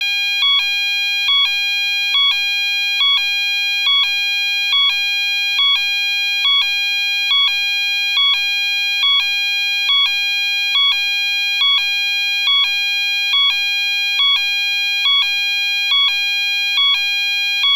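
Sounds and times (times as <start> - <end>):
dual tone piezo siren alarm: 0.1 - 17.7.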